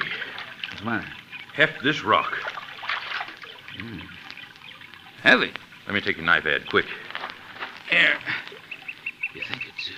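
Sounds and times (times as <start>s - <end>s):
creek water trickling where horses are being watered: 0.0s - 9.9s
speech: 0.8s - 2.5s, 3.8s - 4.2s, 5.2s - 7.0s, 7.9s - 8.4s, 9.4s - 9.9s
low vocal murmur: 3.8s - 4.2s.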